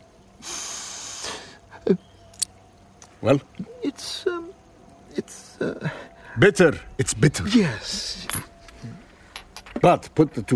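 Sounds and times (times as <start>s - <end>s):
person sniffing a substance through the nose: 0.4s - 1.6s
speech: 1.9s - 2.1s, 3.2s - 4.6s, 5.2s - 8.5s, 9.8s - 10.5s.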